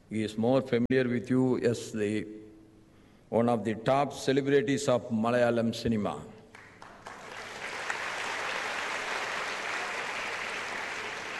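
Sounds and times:
speech: 0.1 - 2.4, 3.3 - 6.4
crowd applause: 6.5 - 11.3.

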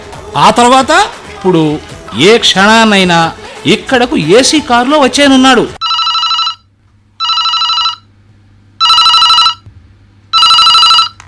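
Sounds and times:
speech: 0.3 - 5.8
telephone ringing with bright electronic trill: 5.8 - 8.1, 8.8 - 9.7, 10.3 - 11.2.

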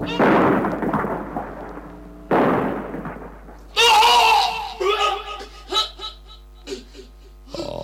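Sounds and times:
bomb explosions on ammunition store: 0.0 - 5.0
shrill voices crying out: 3.8 - 7.8.

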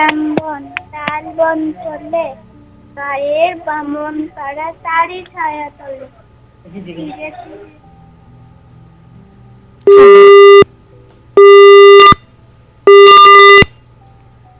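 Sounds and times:
speech: 0.0 - 7.8, 9.9 - 10.6
telephone busy tone beeps after a call is cut off: 9.9 - 10.7, 11.4 - 12.2, 12.9 - 13.7.

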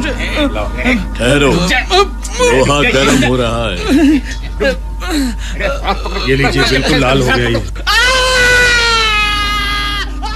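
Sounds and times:
speech: 0.4 - 8.5
patient screaming in pain: 7.8 - 10.3.

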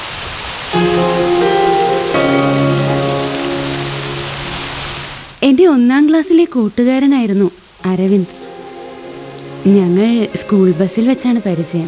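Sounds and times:
rain falling: 0.0 - 5.5, 6.8 - 11.8
speech: 0.7 - 1.4, 5.6 - 8.4, 9.6 - 11.8
sustained musical chords: 0.8 - 5.2, 8.2 - 11.8.

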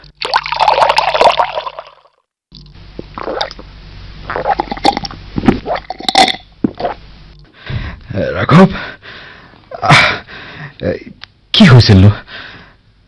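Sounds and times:
injured captain gulping and swallowing water: 0.1 - 2.0, 3.0 - 3.7, 4.3 - 7.0
speech: 8.5 - 8.9, 11.6 - 12.2.

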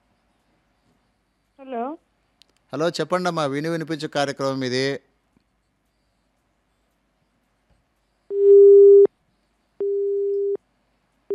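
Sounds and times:
speech: 1.6 - 2.0, 2.7 - 5.1
telephone busy tone after a phone-in call is cut off: 8.3 - 9.1, 9.8 - 10.6.

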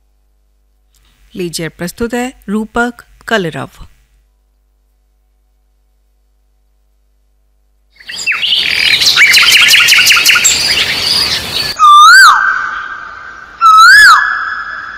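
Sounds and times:
speech: 1.3 - 3.9
dense chorus of chirping birds: 7.9 - 14.9.

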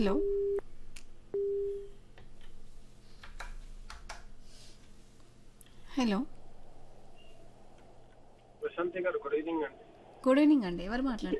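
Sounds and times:
speech: 0.0 - 0.4, 6.0 - 6.4, 8.8 - 11.3
low-pitched busy tone after a phone call cuts off: 1.4 - 2.0.

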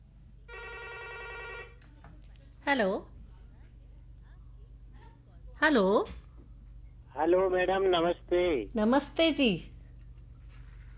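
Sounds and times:
low hum: 0.0 - 10.9
telephone ringing: 0.5 - 1.8
speech: 2.7 - 3.1, 5.6 - 6.2, 7.2 - 9.7.

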